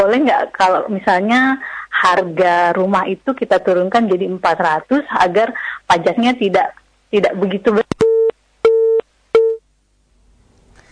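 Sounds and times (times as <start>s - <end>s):
speech: 0.0s - 7.9s
telephone busy signal low beeps after a dropped call: 8.0s - 9.6s.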